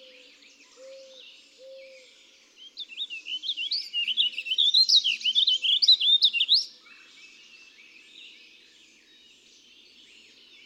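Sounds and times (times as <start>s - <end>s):
Warbling vireo song: 0.0s - 7.1s.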